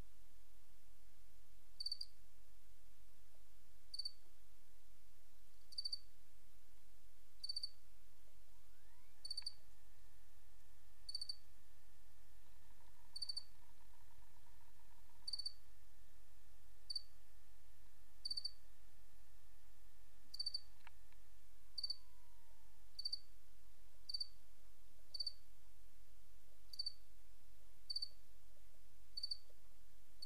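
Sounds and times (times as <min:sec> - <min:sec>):
faint tonal hum: 0:00.0 - 0:30.2
cricket chirping: 0:01.8 - 0:02.2, 0:03.9 - 0:04.2, 0:05.6 - 0:06.1, 0:07.4 - 0:07.8, 0:08.7 - 0:09.6, 0:11.0 - 0:11.4, 0:12.5 - 0:15.6, 0:16.9 - 0:17.1, 0:18.2 - 0:18.6, 0:20.3 - 0:20.9, 0:21.8 - 0:23.3, 0:24.1 - 0:24.4, 0:25.1 - 0:25.4, 0:26.7 - 0:27.0, 0:27.9 - 0:28.2, 0:29.2 - 0:29.5.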